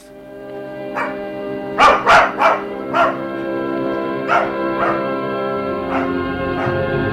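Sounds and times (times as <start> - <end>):
dog barking: 1.0 - 5.2, 5.8 - 7.0.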